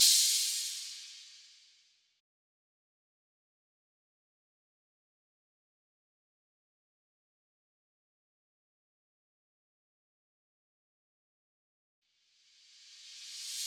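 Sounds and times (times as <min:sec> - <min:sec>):
drum loop with crash cymbal: 0:00.0 - 0:01.5.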